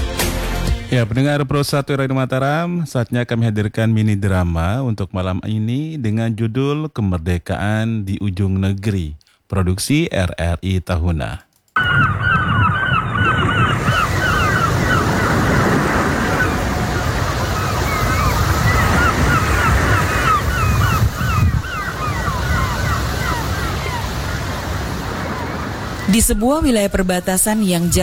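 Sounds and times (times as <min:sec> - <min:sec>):
speech: 0:00.9 - 0:12.3, 0:26.1 - 0:28.0
ocean waves washing against the shore: 0:11.8 - 0:26.2
geese honking: 0:11.8 - 0:26.3.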